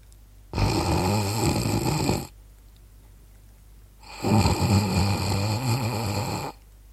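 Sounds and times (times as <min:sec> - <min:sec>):
woman snoring softly through her nose: 0:00.6 - 0:02.3, 0:04.0 - 0:06.6.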